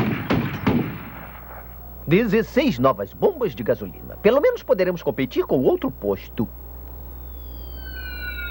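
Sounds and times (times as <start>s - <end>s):
mortar being test-fired: 0.0s - 1.6s
speech: 2.1s - 6.6s.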